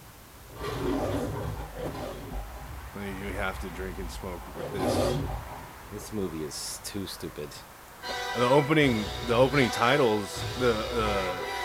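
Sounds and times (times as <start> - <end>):
lion roar from film studio logo: 0.4 - 7.6
speech: 3.4 - 11.5.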